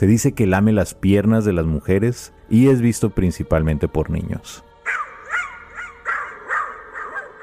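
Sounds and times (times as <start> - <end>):
speech: 0.0 - 5.0
dog barking: 4.8 - 7.4.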